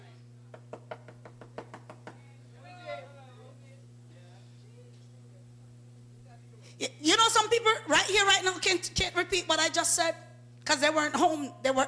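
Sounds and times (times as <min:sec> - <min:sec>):
steady low hum: 0:00.0 - 0:11.8
sharp knocks on a door: 0:00.5 - 0:02.2
speech: 0:06.8 - 0:11.8.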